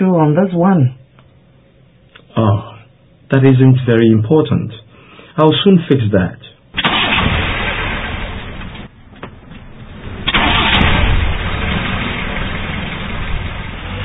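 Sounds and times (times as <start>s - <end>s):
speech: 0.0s - 1.0s, 2.4s - 2.7s, 3.3s - 4.8s, 5.4s - 6.9s
old car engine running rough and spluttering while warming up: 6.8s - 14.0s.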